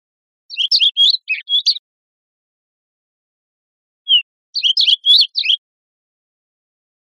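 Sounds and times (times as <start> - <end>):
olive warbler giving high chirpy notes in Costa Rica: 0.5 - 1.8, 4.1 - 5.6.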